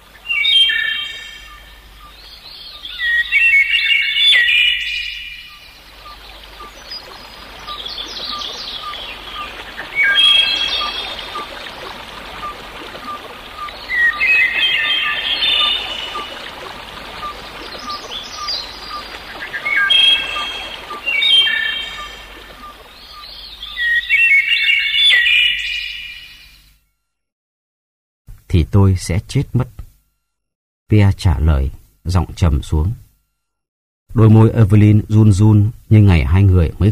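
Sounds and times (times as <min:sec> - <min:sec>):
nightingale singing from a thicket beside a pond: 0:00.0 - 0:26.7
speech: 0:28.8 - 0:29.8, 0:30.9 - 0:33.0, 0:34.1 - 0:36.9.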